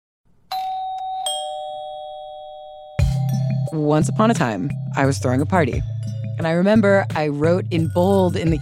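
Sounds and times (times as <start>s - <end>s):
doorbell chiming a two-note ding-dong: 0.5s - 3.8s
speech: 3.7s - 8.6s.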